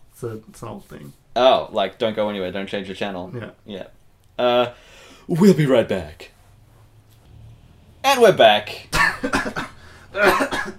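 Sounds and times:
speech: 0.2 - 6.4, 8.0 - 10.7
short harsh forced coughs: 8.9 - 10.7.

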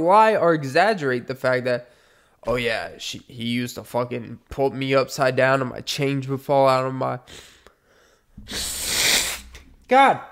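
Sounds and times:
speech: 0.0 - 7.5, 8.4 - 8.9, 9.9 - 10.3
person sneezing loudly: 8.4 - 9.6.

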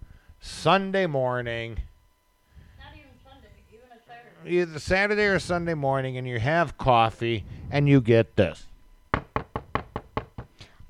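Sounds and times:
speech: 0.6 - 1.9, 4.4 - 8.7
firm knocking on a door: 9.1 - 10.5.

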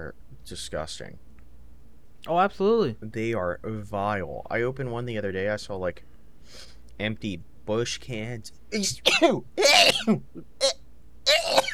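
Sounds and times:
speech: 0.0 - 1.3, 2.2 - 10.8
loud sneeze: 9.0 - 10.2, 11.3 - 11.7
short sharp breathy outbursts: 9.6 - 11.7.

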